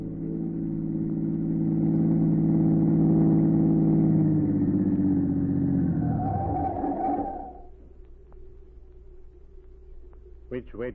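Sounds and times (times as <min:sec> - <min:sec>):
black car engine humming: 0:00.0 - 0:07.7.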